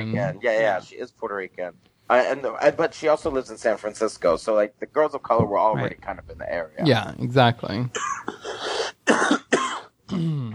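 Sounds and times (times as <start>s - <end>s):
speech: 0.0s - 9.4s, 10.1s - 10.5s
person coughing: 8.0s - 10.5s
throat clearing: 9.1s - 10.5s.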